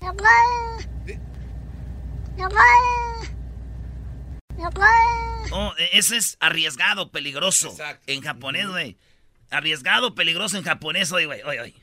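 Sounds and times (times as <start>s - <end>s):
cat meowing almost like spoken words: 0.0s - 0.8s, 2.4s - 3.4s
low steady hum: 0.0s - 5.7s
speech: 0.2s - 1.2s, 2.4s - 3.4s, 4.6s - 11.8s.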